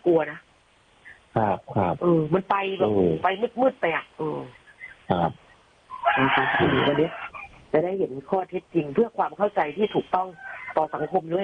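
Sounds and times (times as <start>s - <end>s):
speech: 0.1s - 0.5s, 1.4s - 5.4s, 6.0s - 11.4s
rooster crowing: 5.9s - 7.5s, 10.3s - 11.3s.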